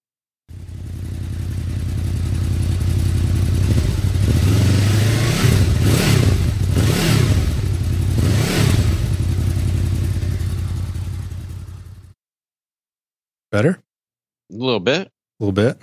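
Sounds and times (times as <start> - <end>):
motorcycle engine with GPR exhaust and dB killer idling and revving: 0.5 - 12.2
speech: 13.6 - 13.9, 14.5 - 15.8.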